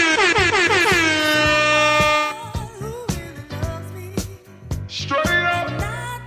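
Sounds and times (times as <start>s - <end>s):
loud blaring air horn blast: 0.0s - 2.4s, 5.1s - 6.0s
thumping beat with sharp percussive hits: 0.0s - 2.4s.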